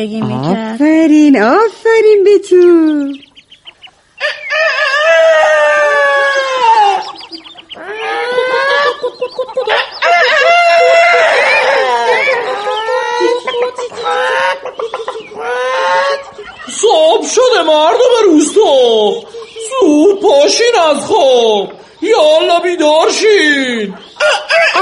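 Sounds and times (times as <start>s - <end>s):
speech: 0.0s - 3.3s, 16.8s - 24.7s
chicken clucking: 2.9s - 24.7s
rooster crowing: 4.2s - 16.5s, 24.2s - 24.7s
laughter: 5.4s - 20.0s.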